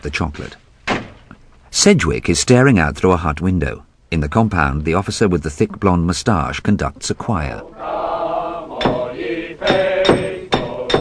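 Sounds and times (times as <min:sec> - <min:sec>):
speech: 0:00.0 - 0:00.6, 0:01.7 - 0:08.0
steady hum: 0:00.0 - 0:10.9
hammer blows shaping a spade and metal tube: 0:08.8 - 0:10.9.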